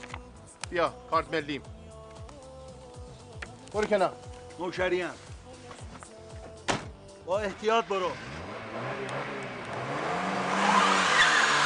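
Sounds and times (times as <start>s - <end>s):
speech: 0.7s - 1.8s, 3.7s - 5.2s, 7.3s - 9.5s
car engine revving hard: 7.5s - 11.6s
tire squeal: 10.0s - 11.6s.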